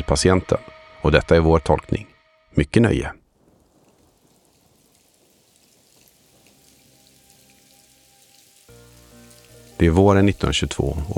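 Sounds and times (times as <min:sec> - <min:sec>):
speech: 0:00.1 - 0:03.2, 0:09.8 - 0:11.1
steady dense rain pattering: 0:03.2 - 0:11.1.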